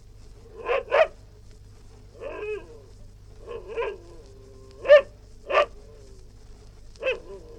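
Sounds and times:
low steady hum: 0.0s - 7.5s
West Highland white terrier barking in short sharp yaps indoors: 0.5s - 1.2s, 2.2s - 2.7s, 3.4s - 4.1s, 4.8s - 5.8s, 7.0s - 7.5s
West Highland white terrier drawn-out whiny vocalizations: 2.2s - 6.2s, 7.0s - 7.5s.

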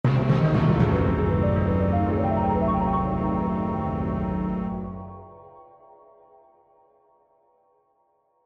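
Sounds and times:
dark eerie accent: 0.1s - 5.6s.

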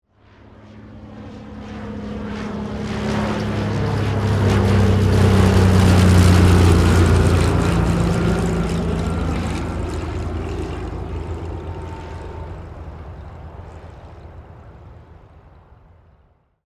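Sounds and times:
prop plane passing by: 0.1s - 16.4s.

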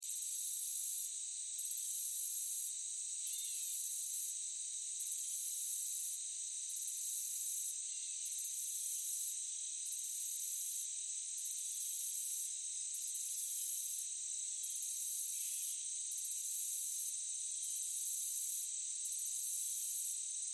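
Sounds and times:
meadow crickets chirping: 0.1s - 20.5s.

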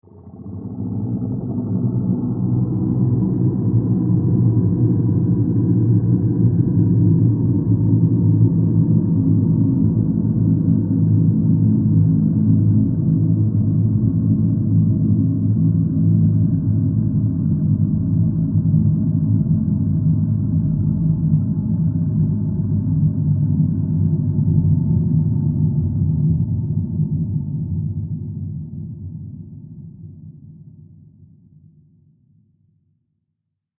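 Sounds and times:
evil horror drone with low growling moan: 0.0s - 30.3s.

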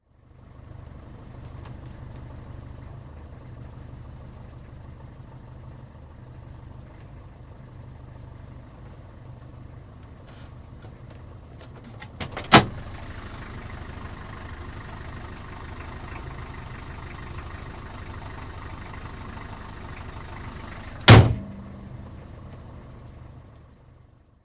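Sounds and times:
Austin diesel taxi cab engine tickover heard from interior: 0.0s - 24.4s
Austin diesel taxi cab door opening and shutting: 10.9s - 12.8s, 21.0s - 22.0s.

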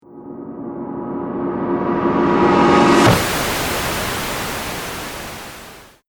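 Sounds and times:
trailer hit: 0.0s - 5.7s
white noise: 3.0s - 6.0s.

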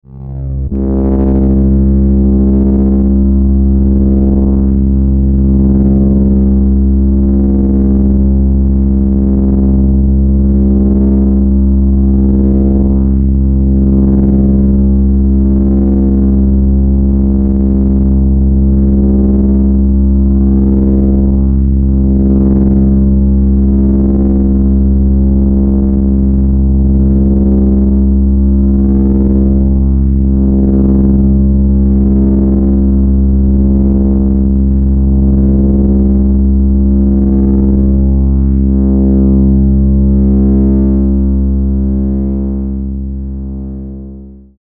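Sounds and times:
synth electrical hum with vibrato: 0.0s - 44.5s.

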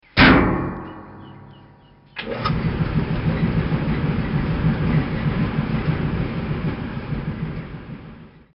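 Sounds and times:
clothes dryer running: 2.2s - 8.5s.

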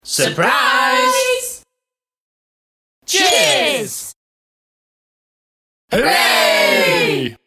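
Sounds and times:
group voices shouting at a party: 0.1s - 1.6s, 3.1s - 4.1s, 5.9s - 7.4s.

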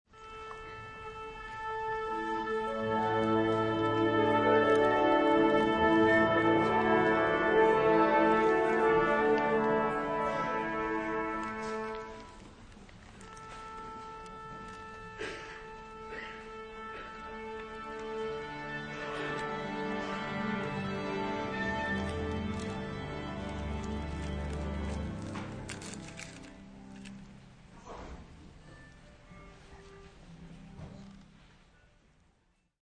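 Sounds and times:
orchestra tuning up during concert: 0.2s - 31.8s
concert audience noise: 0.2s - 32.0s
audience coughing at a concert: 10.0s - 11.8s, 15.0s - 17.4s.

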